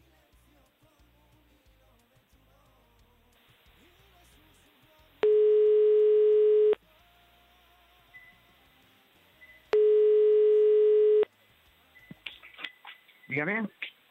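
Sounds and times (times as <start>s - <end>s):
faint noise: 0.0s - 14.0s
long steady telephone ringback tones: 5.2s - 6.8s, 9.8s - 11.3s
speech: 13.4s - 13.8s.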